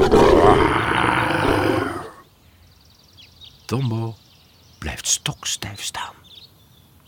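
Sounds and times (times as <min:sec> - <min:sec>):
lion roaring: 0:00.0 - 0:02.2
speech: 0:03.7 - 0:04.2, 0:05.0 - 0:06.2.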